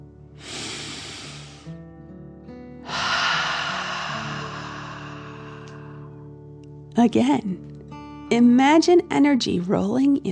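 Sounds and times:
deep belly breathing in and out: 0.4s - 1.8s, 2.8s - 6.4s
soft steady musical drone: 2.9s - 6.6s
speech: 7.0s - 10.3s.

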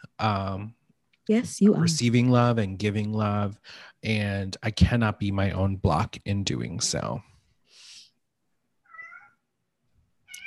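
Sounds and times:
speech: 0.2s - 7.3s
cat meowing: 8.9s - 9.4s, 10.3s - 10.4s.

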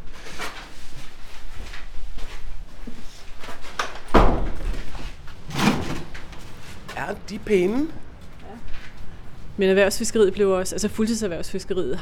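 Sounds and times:
shuffling and rattling: 0.2s - 9.6s
door opening: 3.7s - 9.0s
heavy bump: 4.1s - 9.5s
speech: 7.1s - 8.0s, 9.6s - 12.0s.

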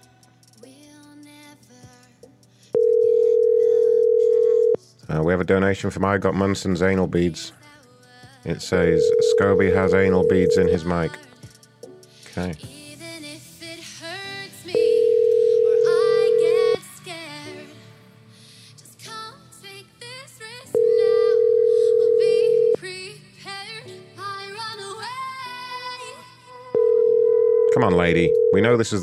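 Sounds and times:
telephone line ringback tone ringing unanswered: 2.8s - 4.8s, 8.8s - 11.1s, 14.8s - 16.8s, 20.8s - 22.8s, 26.8s - 29.0s
speech: 5.1s - 7.6s, 8.4s - 11.2s, 12.4s - 12.7s, 28.0s - 29.0s.

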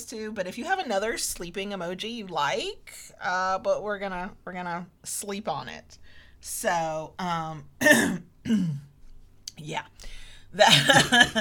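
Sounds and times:
speech: 0.0s - 8.9s, 9.6s - 11.3s
person with something stuck in their throat clearing it and coughing: 7.8s - 8.9s, 10.7s - 11.3s.

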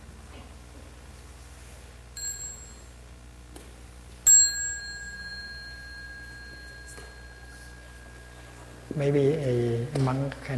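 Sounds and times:
small mindfulness bell ringing: 2.2s - 3.0s, 4.3s - 9.3s
speech: 9.0s - 10.5s.

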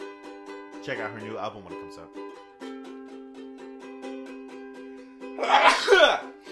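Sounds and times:
speech: 0.8s - 2.4s, 5.4s - 6.3s
person sneezing with wheezy intake: 5.4s - 6.4s.

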